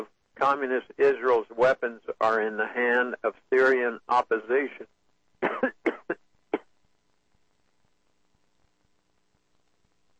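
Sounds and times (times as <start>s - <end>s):
speech: 0.4s - 4.9s
person coughing sharply with a throaty rasp: 5.4s - 6.7s.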